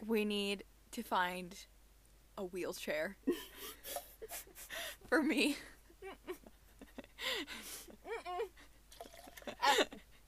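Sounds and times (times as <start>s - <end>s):
speech: 0.1s - 1.7s, 2.4s - 6.4s, 7.2s - 8.6s, 9.5s - 10.1s
person spitting out a mouthful of water: 8.9s - 9.5s.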